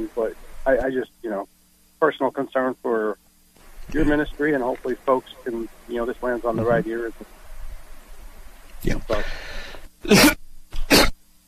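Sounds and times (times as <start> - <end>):
speech: 0.0 - 3.2, 3.9 - 7.4, 8.8 - 10.4
man coughing with something caught in his throat: 10.0 - 11.2.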